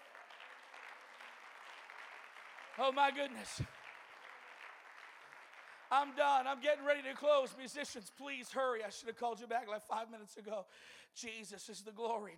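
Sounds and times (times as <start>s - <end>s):
audience clapping: 0.0s - 8.3s
speech: 2.8s - 3.8s, 5.9s - 12.3s.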